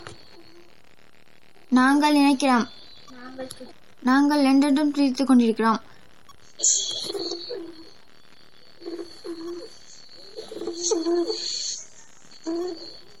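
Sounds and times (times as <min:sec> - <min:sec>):
faint steady high-pitched hum: 0:00.0 - 0:13.1
speech: 0:01.7 - 0:02.8, 0:03.4 - 0:05.9, 0:06.6 - 0:07.3, 0:10.8 - 0:11.5
dove cooing: 0:06.7 - 0:07.9, 0:08.8 - 0:11.5.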